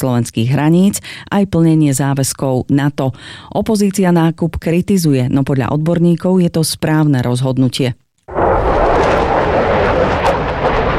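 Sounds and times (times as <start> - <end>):
speech: 0.0 - 8.0
military jet flying: 8.3 - 10.9.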